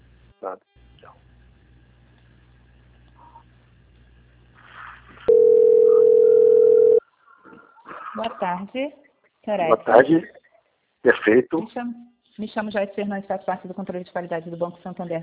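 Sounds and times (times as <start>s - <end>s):
speech: 0.4s - 1.3s, 8.2s - 10.4s, 11.0s - 15.2s
telephone tone on a bank call being transferred: 5.3s - 7.0s.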